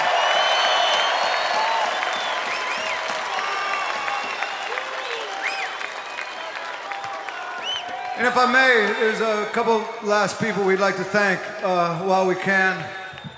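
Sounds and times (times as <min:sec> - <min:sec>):
concert audience whoops and cheers: 0:00.0 - 0:09.0
concert audience applause: 0:00.0 - 0:11.0, 0:12.6 - 0:13.3
speech: 0:08.2 - 0:13.0.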